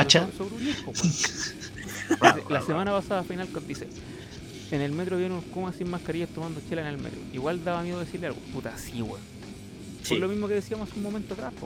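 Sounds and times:
speech: 0:00.0 - 0:09.3, 0:10.0 - 0:11.6
laughter: 0:00.7 - 0:02.9, 0:04.0 - 0:04.6
man imitating dog growling and barking: 0:02.2 - 0:02.8.

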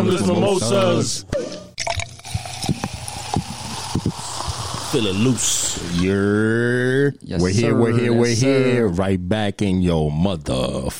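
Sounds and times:
speech: 0:00.0 - 0:01.6, 0:04.9 - 0:10.9
water pouring into a glass: 0:01.8 - 0:06.1.

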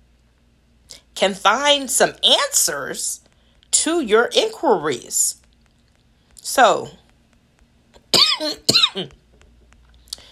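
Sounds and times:
speech: 0:01.2 - 0:03.2, 0:03.8 - 0:05.4, 0:06.5 - 0:07.0, 0:08.1 - 0:09.2
person coughing harshly: 0:08.1 - 0:09.1.

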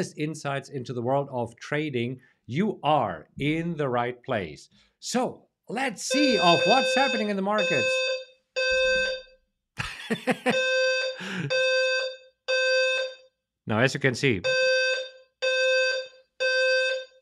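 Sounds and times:
speech: 0:00.0 - 0:08.2, 0:10.1 - 0:11.7, 0:13.7 - 0:14.7
building fire alarm being tested: 0:06.0 - 0:09.4, 0:10.4 - 0:13.4, 0:14.4 - 0:17.2
laughter: 0:09.8 - 0:11.5.

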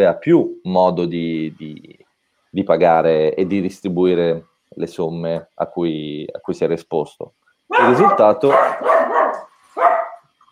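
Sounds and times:
speech: 0:00.0 - 0:10.0
dogs barking: 0:07.7 - 0:10.3.

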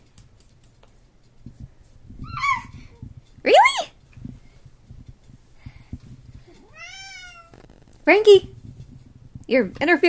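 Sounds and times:
cat meowing drawn-out: 0:06.6 - 0:07.7
speech: 0:08.1 - 0:08.5, 0:09.5 - 0:10.0.

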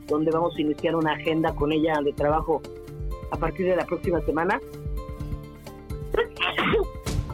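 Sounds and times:
speech: 0:00.1 - 0:04.9
person with flu sneezing: 0:06.1 - 0:07.0.

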